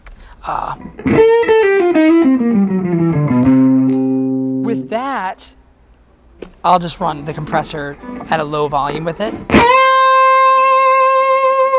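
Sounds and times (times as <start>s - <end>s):
speech: 0.4s - 3.4s, 4.7s - 5.6s, 6.6s - 9.7s
guitar through a distortion pedal playing a lead line: 0.8s - 5.0s, 9.2s - 11.7s.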